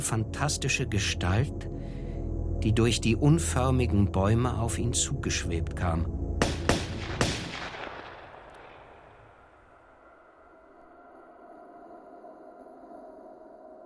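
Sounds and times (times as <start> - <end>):
speech: 0.0 - 2.0, 2.6 - 6.2
low rumbling ambience: 0.0 - 13.8
sharp gunshots with decay: 6.4 - 9.4.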